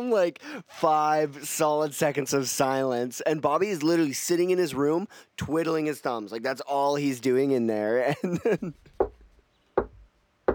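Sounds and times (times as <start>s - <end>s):
speech: 0.0s - 8.9s
firm knocking on a wooden door: 9.0s - 9.2s, 9.8s - 10.5s.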